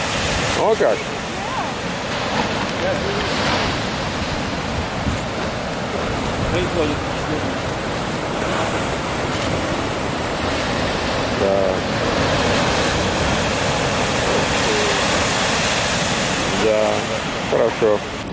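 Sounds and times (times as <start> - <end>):
ocean waves breaking on the shore: 0.0 - 18.3
wind buffeting the microphone: 0.0 - 18.3
speech: 0.6 - 1.2, 6.5 - 7.5, 11.4 - 12.0, 16.6 - 18.2.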